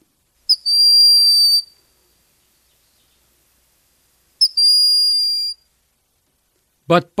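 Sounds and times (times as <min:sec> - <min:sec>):
Broad-winged Hawk giving thin plaintive whistling call: 0:00.5 - 0:01.8, 0:04.4 - 0:05.7.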